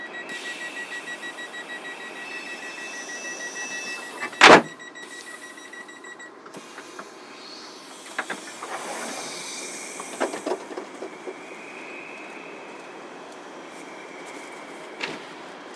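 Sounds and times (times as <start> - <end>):
train rumbling on rails: 0.2 - 5.7, 6.4 - 15.7
faint high squeal: 0.2 - 5.8, 7.4 - 13.1
train wheels clacking over rail joints: 6.4 - 11.7.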